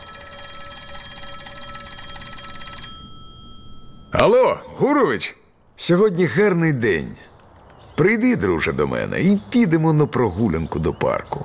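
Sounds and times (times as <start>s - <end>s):
telephone ringing with a rapid metallic bell trill: 0.0s - 4.3s
speech: 4.2s - 7.3s, 8.0s - 11.4s.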